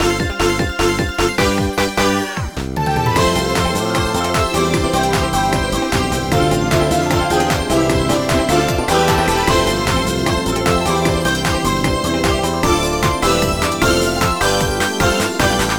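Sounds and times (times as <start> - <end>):
background music: 0.0 - 15.7.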